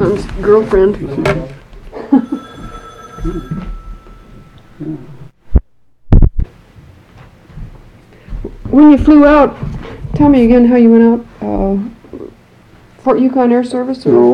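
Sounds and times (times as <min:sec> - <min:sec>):
speech: 0:00.0 - 0:01.5, 0:03.2 - 0:03.6, 0:08.8 - 0:12.0, 0:13.0 - 0:14.3
telephone bell ringing: 0:02.1 - 0:05.3.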